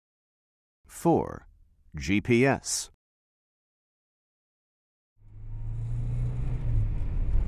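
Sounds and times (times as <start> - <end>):
speech: 1.0 - 3.0
new car engine starting and idling with low rumble: 5.2 - 7.4.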